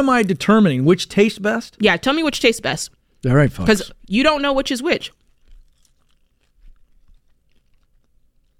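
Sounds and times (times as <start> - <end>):
people chewing crunchy food during a taste test: 0.0 - 1.6, 4.3 - 8.5
speech: 0.0 - 5.2.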